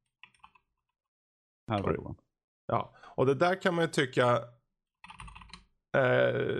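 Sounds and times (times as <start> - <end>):
speech: 1.7 - 4.6, 6.0 - 6.5
rapid typing on quiet high-end mechanical keyboard: 5.0 - 5.6.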